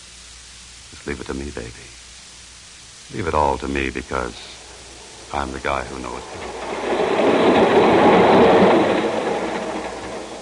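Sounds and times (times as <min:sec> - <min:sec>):
speech: 0:00.9 - 0:02.0, 0:03.1 - 0:04.6, 0:05.3 - 0:06.8
train wheels clattering on tracks: 0:04.2 - 0:10.4.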